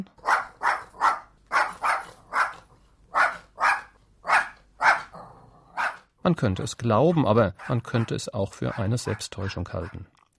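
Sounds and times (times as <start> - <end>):
dog giving sharp barks: 0.2 - 6.0, 7.6 - 10.0
speech: 6.2 - 10.1.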